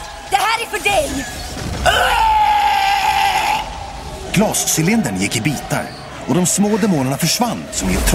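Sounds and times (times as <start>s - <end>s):
speech: 0.7s - 2.2s, 4.4s - 8.1s
man screaming: 1.9s - 3.8s.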